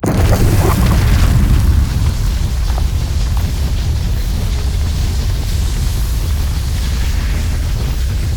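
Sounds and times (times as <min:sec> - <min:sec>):
mortar cannon firing: 0:00.0 - 0:05.9
flame puddle burning: 0:00.0 - 0:08.3.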